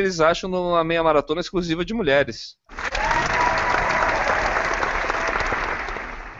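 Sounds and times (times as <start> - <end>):
speech: 0.0 - 3.0
audience applause: 2.7 - 6.3.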